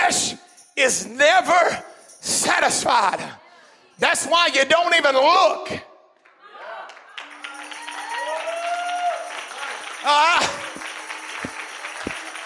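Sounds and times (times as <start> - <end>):
speech: 0.8 - 3.4, 4.0 - 5.9, 10.0 - 10.4
hands clapping: 6.2 - 12.4.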